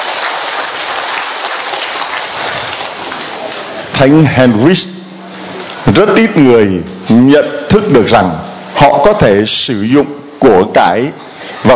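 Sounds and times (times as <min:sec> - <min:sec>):
audience applauding to congratulate those who took two saints as patron saints: 0:00.0 - 0:04.0
speech: 0:04.0 - 0:05.0, 0:06.0 - 0:11.7.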